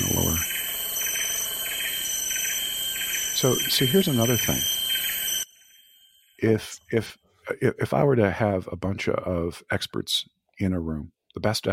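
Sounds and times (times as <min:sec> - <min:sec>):
dense chorus of tropical birds calling and chirping: 0:00.0 - 0:05.4
steady high-pitched insect buzzing: 0:00.0 - 0:06.4
frog trills: 0:00.0 - 0:06.5
speech: 0:03.4 - 0:04.8, 0:06.4 - 0:11.7.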